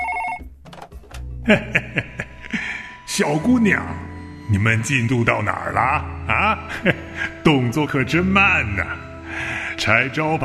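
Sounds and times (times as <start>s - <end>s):
telephone ringing with electronic tones: 0.0s - 0.5s
speech: 1.5s - 2.1s, 3.2s - 10.4s
laughter: 1.5s - 2.9s, 6.5s - 7.4s.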